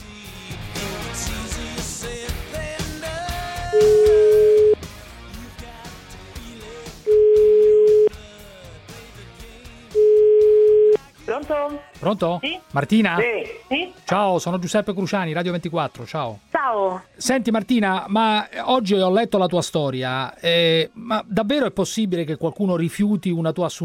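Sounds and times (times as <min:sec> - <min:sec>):
busy music: 0:00.0 - 0:23.8
telephone ring-back tones as a call is placed: 0:03.8 - 0:04.8, 0:07.1 - 0:08.1, 0:10.0 - 0:11.0
speech: 0:12.0 - 0:23.8.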